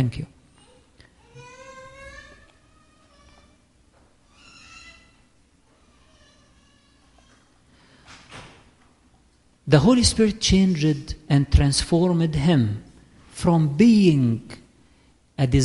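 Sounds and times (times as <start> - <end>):
speech: 0.0 - 0.3, 9.7 - 14.6, 15.4 - 15.6
low room hum: 0.0 - 15.6
door closing with a soft bump: 8.1 - 8.8.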